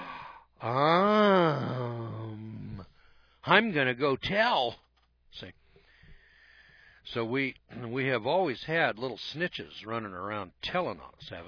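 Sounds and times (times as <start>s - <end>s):
voice imitating a prissy little girl's shocked gasp: 0.0s - 2.8s
speech: 0.6s - 1.1s, 3.5s - 5.6s, 7.1s - 11.4s.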